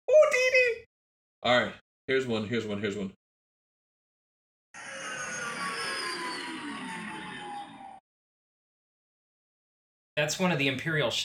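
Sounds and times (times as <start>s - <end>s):
speech: 1.4s - 3.2s, 10.2s - 11.2s
X-wing starfighter flyby with roaring engine whoosh and high whine: 4.8s - 8.0s.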